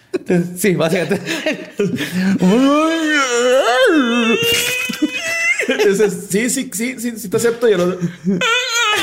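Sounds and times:
laughter: 0.2s - 6.7s, 7.6s - 9.0s
speech: 0.3s - 8.7s
person imitating imbunche creature moans and guttural cries: 2.3s - 5.6s.

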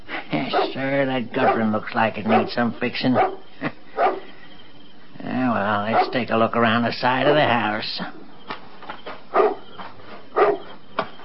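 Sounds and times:
dog barking outside at night near a house: 0.5s - 0.8s, 1.4s - 3.4s, 4.0s - 4.2s, 5.9s - 6.2s, 7.2s - 7.6s, 9.3s - 9.7s, 10.3s - 10.7s
speech: 0.5s - 3.8s, 5.5s - 8.2s.

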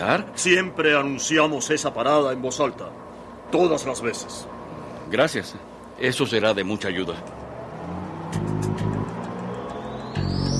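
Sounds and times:
speech: 0.0s - 7.4s
large vehicle's engine rumbling and revving as it pulls away: 4.4s - 10.5s.

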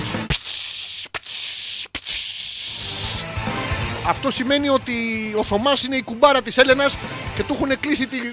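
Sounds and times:
air hissing out of a deflating tire: 0.3s - 3.2s
speech: 4.1s - 8.3s.

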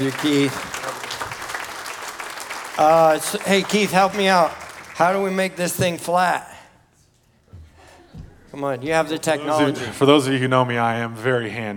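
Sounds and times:
speech: 0.0s - 0.7s, 2.8s - 6.5s, 8.6s - 11.7s
audience applause: 0.0s - 5.8s.

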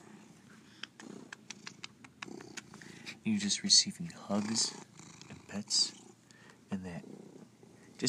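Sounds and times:
domestic cat purring: 1.0s - 2.9s, 4.0s - 8.0s
speech: 3.2s - 4.9s, 5.5s - 6.0s, 6.7s - 7.2s.

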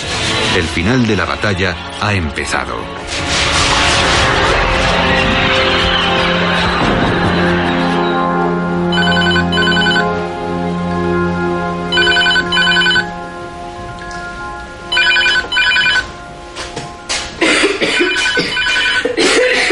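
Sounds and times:
loud sustained musical background: 0.0s - 19.7s
speech: 0.6s - 3.4s
telephone ringing with electronic trilling: 8.9s - 10.1s, 11.9s - 13.1s, 14.9s - 16.1s, 18.0s - 19.2s.

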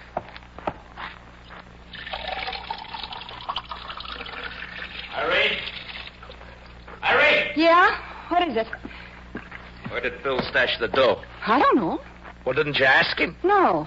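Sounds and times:
low hum: 0.0s - 13.8s
water pouring into a glass: 1.9s - 6.4s
speech: 7.6s - 8.9s, 10.0s - 13.8s.

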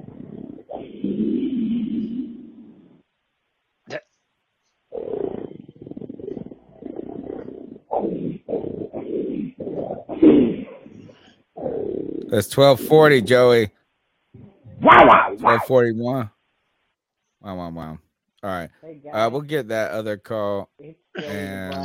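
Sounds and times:
man growling like an animal: 0.0s - 3.0s, 4.9s - 12.4s
speech: 12.3s - 13.8s, 15.0s - 16.4s, 17.4s - 21.8s.

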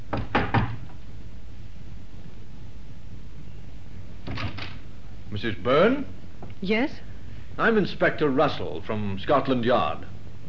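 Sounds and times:
knocks on a flat's door: 0.1s - 0.9s
speech: 5.4s - 10.1s.

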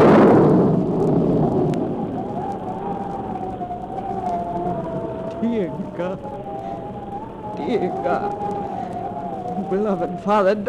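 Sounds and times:
faint wavering tone: 0.0s - 10.6s
rolling thunder of an approaching storm: 0.0s - 10.6s
speech: 7.7s - 8.6s, 9.7s - 10.6s.

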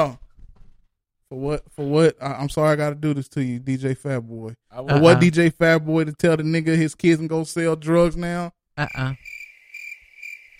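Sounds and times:
speech: 0.0s - 0.2s, 1.3s - 9.4s
crickets chirping in a steady high trill: 8.9s - 10.5s.

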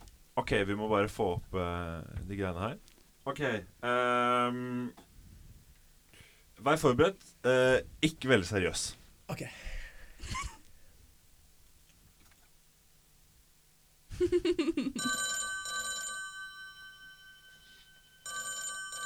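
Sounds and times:
speech: 0.5s - 5.1s, 6.6s - 10.4s, 14.2s - 15.4s
telephone ringing with electronic trilling tone: 15.0s - 19.0s.

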